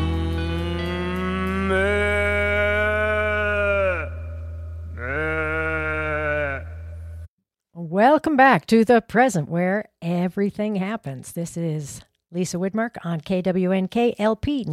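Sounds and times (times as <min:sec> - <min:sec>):
song: 0:00.0 - 0:02.1
cow mooing: 0:00.0 - 0:07.1
speech: 0:01.7 - 0:02.0, 0:08.0 - 0:14.7.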